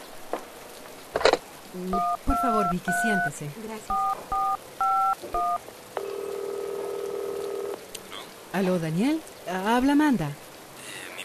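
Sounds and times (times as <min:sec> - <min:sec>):
faint hiss: 0:00.0 - 0:11.2
speech: 0:01.7 - 0:06.2, 0:08.5 - 0:10.4
long steady loud telephone tone: 0:01.9 - 0:07.8
telephone keypad tones as a number is dialed: 0:02.0 - 0:03.3, 0:03.9 - 0:06.8.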